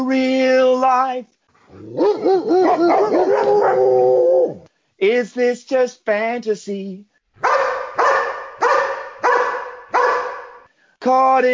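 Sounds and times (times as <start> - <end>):
speech: 0.1 - 7.1, 11.0 - 11.5
poodle barking and howling along to a song: 1.7 - 4.7, 7.4 - 10.7.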